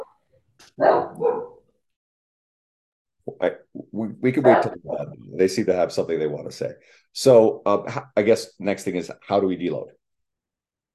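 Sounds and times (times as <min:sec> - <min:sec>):
speech: 0:00.8 - 0:01.3, 0:04.2 - 0:10.0
dogs barking: 0:00.8 - 0:01.6.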